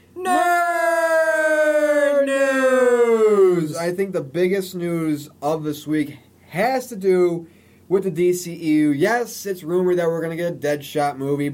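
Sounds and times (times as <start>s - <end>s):
siren wailing: 0.2s - 3.8s
speech: 3.8s - 11.5s.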